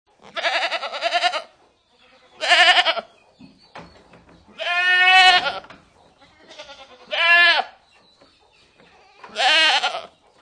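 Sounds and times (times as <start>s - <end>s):
goat: 0.2s - 10.4s.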